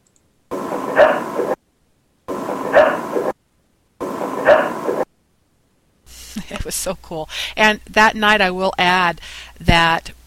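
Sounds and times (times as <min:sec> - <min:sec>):
dog barking: 0:00.9 - 0:01.5, 0:02.6 - 0:03.2, 0:04.4 - 0:04.9
speech: 0:06.7 - 0:10.2.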